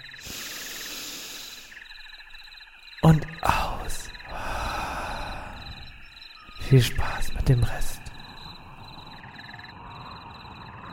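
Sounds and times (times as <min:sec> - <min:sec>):
faint chirping: 0:00.0 - 0:10.9
deep inhale: 0:00.2 - 0:01.8, 0:04.3 - 0:06.0
speech: 0:03.0 - 0:03.3, 0:06.7 - 0:07.9.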